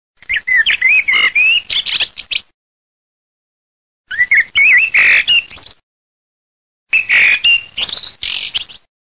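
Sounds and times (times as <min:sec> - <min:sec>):
merlo blackbird birdsound: 0:00.2 - 0:02.5, 0:04.1 - 0:05.8, 0:06.9 - 0:08.9.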